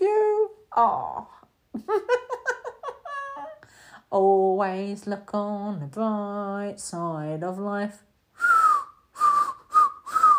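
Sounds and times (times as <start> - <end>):
speech: 0.8 - 2.2, 4.1 - 8.5
failed attempt at whistling with breathy puffs of air: 8.4 - 10.3.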